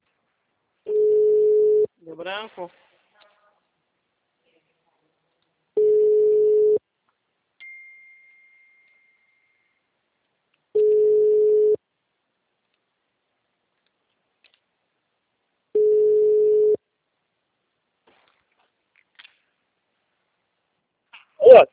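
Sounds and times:
ringback tone of an outgoing telephone call: 0:00.9 - 0:01.9, 0:05.8 - 0:06.8, 0:10.8 - 0:11.8, 0:15.8 - 0:16.8
speech: 0:02.2 - 0:02.9.

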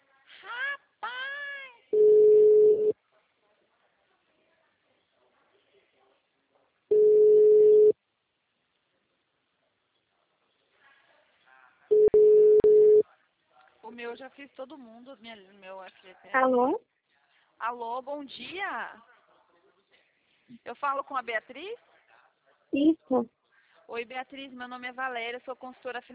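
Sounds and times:
ringback tone beeps of an outgoing telephone call: 0:02.0 - 0:02.9, 0:06.9 - 0:07.9, 0:11.9 - 0:13.0
speech: 0:14.0 - 0:16.9, 0:17.6 - 0:19.1, 0:20.5 - 0:21.9, 0:22.7 - 0:26.1.

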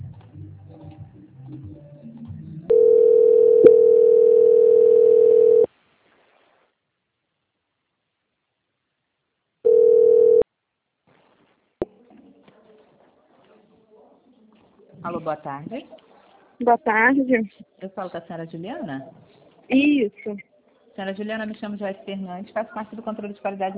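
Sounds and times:
telephone line tone while a bank call is transferred on hold: 0:02.7 - 0:05.7, 0:09.7 - 0:10.4
speech: 0:15.2 - 0:16.0, 0:16.6 - 0:23.7.

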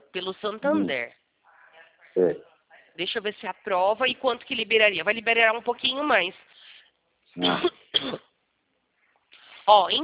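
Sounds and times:
speech: 0:00.1 - 0:01.2, 0:02.1 - 0:06.6, 0:07.4 - 0:08.3, 0:09.7 - 0:10.0
person with the flu coughing harshly: 0:07.4 - 0:08.4.

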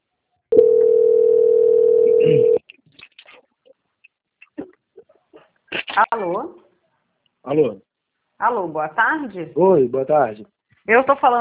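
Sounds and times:
buzzy telephone line tone while a call is transferred: 0:00.5 - 0:02.6
speech: 0:06.0 - 0:06.6, 0:07.4 - 0:11.3.

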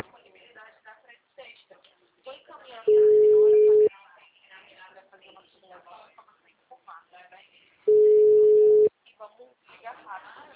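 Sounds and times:
people talking: 0:00.0 - 0:10.5
ringback tone of an outgoing phone call: 0:02.9 - 0:03.9, 0:07.9 - 0:08.9.

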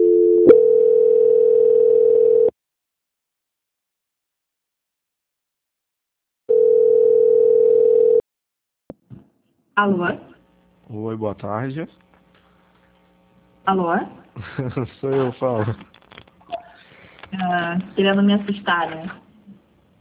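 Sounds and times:
telephone line tones during a call transfer: 0:00.0 - 0:02.5, 0:06.5 - 0:08.2
speech: 0:09.8 - 0:10.3, 0:10.9 - 0:12.1, 0:13.6 - 0:15.9, 0:17.3 - 0:19.2
laughter: 0:14.4 - 0:15.9.

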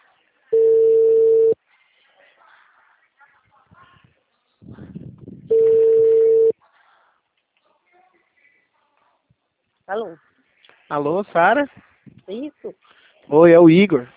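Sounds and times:
faint murmuring: 0:00.0 - 0:13.4
telephone ringback tone as a call is placed: 0:00.5 - 0:01.6, 0:05.5 - 0:06.5
speech: 0:09.9 - 0:10.3, 0:10.9 - 0:14.1.

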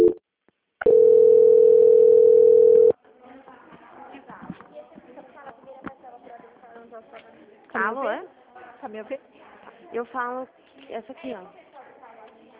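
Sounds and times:
telephone line tone during call transfer: 0:00.0 - 0:00.2, 0:00.8 - 0:03.0
speech: 0:10.0 - 0:11.6.

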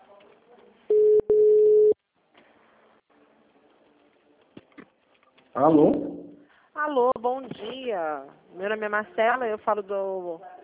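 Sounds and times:
low electronic telephone ringback tone during a call: 0:00.9 - 0:02.0
speech: 0:05.6 - 0:06.1, 0:06.8 - 0:10.5.

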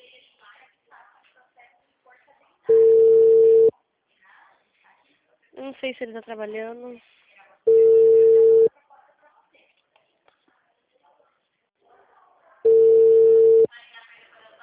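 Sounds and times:
ringback tones of an outgoing phone call: 0:02.7 - 0:03.7, 0:07.7 - 0:08.7, 0:12.7 - 0:13.7
speech: 0:05.6 - 0:07.2.

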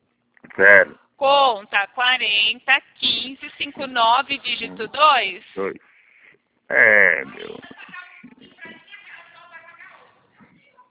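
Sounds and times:
speech: 0:00.6 - 0:05.9, 0:06.7 - 0:07.7
woman shouting over a phone line in an office: 0:03.0 - 0:03.5.

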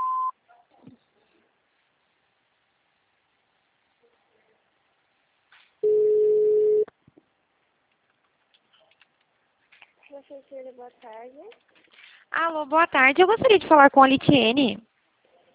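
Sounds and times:
automated phone-line signal tone on a call to an office extension menu: 0:00.0 - 0:00.3, 0:05.8 - 0:06.9
long steady beep: 0:00.0 - 0:00.3, 0:05.8 - 0:06.9
speech: 0:10.2 - 0:14.9.

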